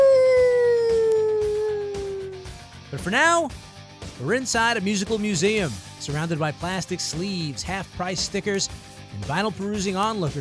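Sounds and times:
long howl: 0.0 - 2.6
speech: 3.1 - 3.6, 4.2 - 10.3.

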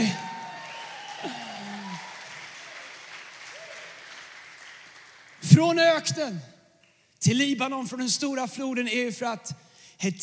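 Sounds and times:
congregation applauding: 0.0 - 5.5
speech: 5.6 - 6.5, 7.2 - 10.2.

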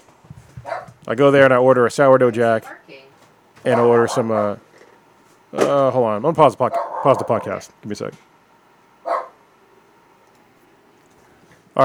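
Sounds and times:
low hum: 0.0 - 11.8
dog bark: 0.6 - 0.9, 3.7 - 4.5, 6.7 - 7.5, 9.0 - 9.4
speech: 1.1 - 2.8, 3.6 - 4.7, 5.5 - 8.3.

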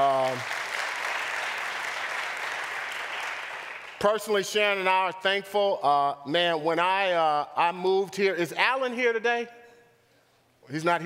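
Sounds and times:
large crowd applauding: 0.0 - 4.0
speech: 4.0 - 9.6, 10.7 - 11.0.

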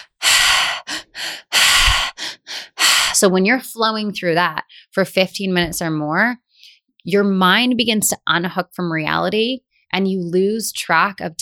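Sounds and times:
loud triactive breathwork in through belly and out through mouth: 0.0 - 3.2
speech: 3.2 - 6.4, 7.0 - 11.4.

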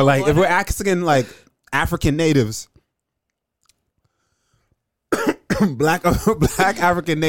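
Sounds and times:
speech: 0.0 - 2.7, 5.1 - 7.2
person coughing with something stuck in the throat: 5.1 - 7.0.

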